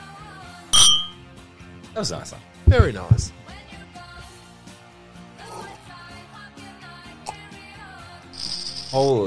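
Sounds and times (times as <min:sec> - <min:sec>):
wine glasses of red wine clinking in a toast: 0:00.8 - 0:01.2
speech: 0:02.0 - 0:03.4, 0:08.9 - 0:09.2.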